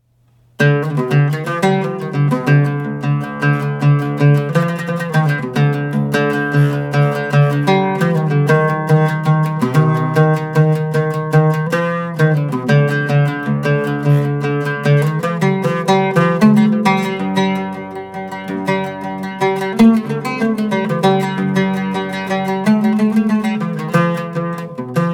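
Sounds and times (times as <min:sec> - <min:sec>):
oud playing a Bayati taqsim: 0:00.5 - 0:25.1.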